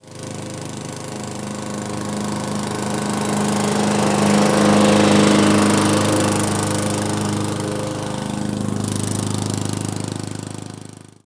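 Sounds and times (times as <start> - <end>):
lawn mower: 0.0 - 11.2.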